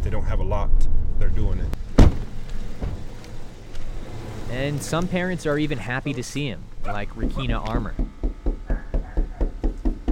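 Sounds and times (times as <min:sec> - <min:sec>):
speech: 0:00.2 - 0:01.9, 0:04.5 - 0:08.2
knocking on a door: 0:07.2 - 0:10.1.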